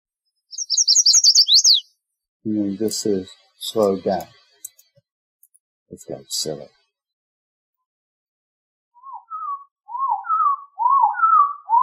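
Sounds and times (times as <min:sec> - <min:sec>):
chestnut-sided warbler song: 0:00.2 - 0:05.0, 0:09.0 - 0:11.8
speech: 0:01.6 - 0:04.4, 0:05.9 - 0:06.8.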